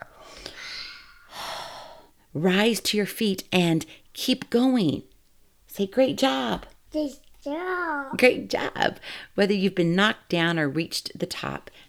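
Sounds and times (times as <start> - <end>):
person taking deep breaths: 0.0 - 2.3, 9.0 - 9.4
speech: 2.3 - 5.1, 5.8 - 11.8.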